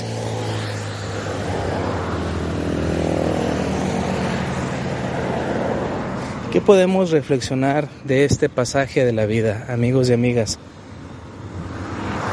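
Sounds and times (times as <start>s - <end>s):
motorcycles passing: 0.0s - 12.3s
speech: 6.6s - 10.7s.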